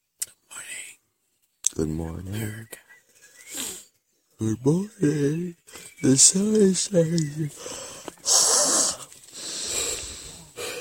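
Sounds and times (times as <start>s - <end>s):
speech: 1.8s - 2.8s, 4.4s - 8.4s
person yawning: 7.6s - 10.8s.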